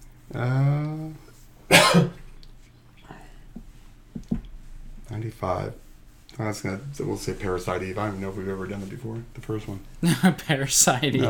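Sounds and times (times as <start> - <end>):
speech: 0.3 - 0.7, 5.4 - 5.8, 6.4 - 11.2
sharp raspy cough: 1.7 - 2.2.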